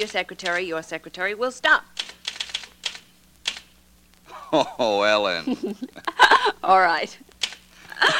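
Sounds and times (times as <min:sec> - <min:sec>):
typewriter keys striking: 0:00.0 - 0:00.9, 0:02.0 - 0:03.7, 0:07.4 - 0:07.6
speech: 0:00.0 - 0:02.0, 0:04.5 - 0:07.3
laughter: 0:04.3 - 0:06.7, 0:07.9 - 0:08.1.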